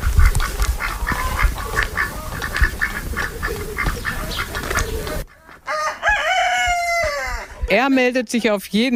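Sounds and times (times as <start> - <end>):
ducks quacking in a poultry yard: 0.0 - 5.7
chickens cackling in a poultry yard: 0.0 - 8.9
rooster crowing: 5.7 - 7.7
speech: 7.7 - 8.9.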